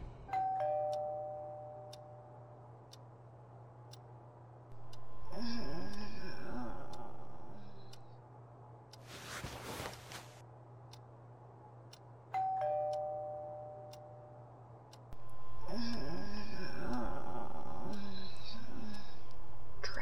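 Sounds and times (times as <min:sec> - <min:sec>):
doorbell chiming: 0:00.3 - 0:02.2, 0:12.4 - 0:14.3
clock ticking: 0:00.3 - 0:03.1, 0:04.7 - 0:08.2, 0:11.8 - 0:14.2, 0:15.8 - 0:20.0.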